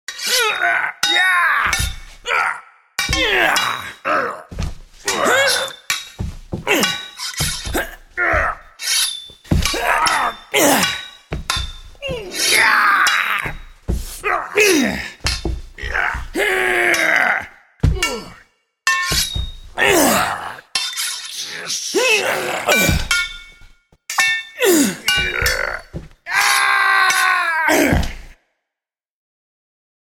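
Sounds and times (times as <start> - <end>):
knights making vocal fight sounds: 0.1 - 5.8, 6.6 - 8.7, 9.5 - 11.0, 12.0 - 15.2, 15.8 - 18.5, 19.8 - 20.7, 21.4 - 23.2, 24.6 - 28.4
two knights sword fighting: 0.1 - 28.3.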